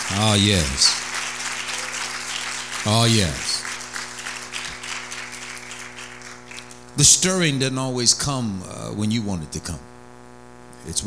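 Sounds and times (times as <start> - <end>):
congregation clapping during a church sermon: 0.0 - 7.7
speech: 0.1 - 1.1, 2.8 - 3.6, 7.0 - 9.9, 10.8 - 11.0.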